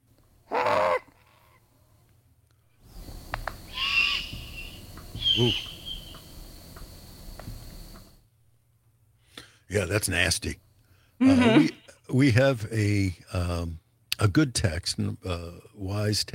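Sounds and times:
outdoor noise: 0.0 - 16.3
juvenile great horned owl giving harsh raspy screeching calls: 0.5 - 1.6, 3.7 - 6.3
speech: 5.4 - 5.7, 9.7 - 10.6, 11.2 - 16.3.

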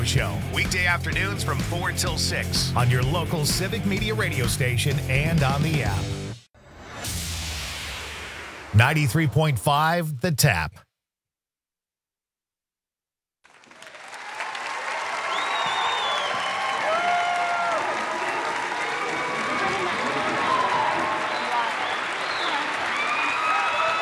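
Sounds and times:
speech: 0.0 - 6.2, 8.8 - 10.8
applause from a large audience: 13.5 - 24.0
faint cheers: 13.9 - 24.0.

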